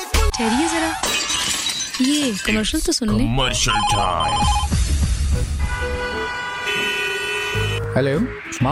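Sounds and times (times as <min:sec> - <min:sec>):
speech: 0:00.4 - 0:01.2, 0:02.0 - 0:04.8, 0:08.0 - 0:08.6
car horns honking in a traffic jam: 0:05.6 - 0:08.0.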